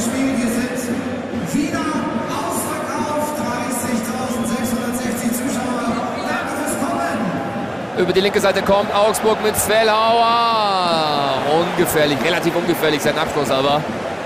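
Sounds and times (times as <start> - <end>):
stadium public-address voice announcing attendance at a football match: 0.0 - 14.2
dense murmur of a stadium football crowd: 5.4 - 8.2, 10.6 - 14.2
speech: 8.0 - 14.2.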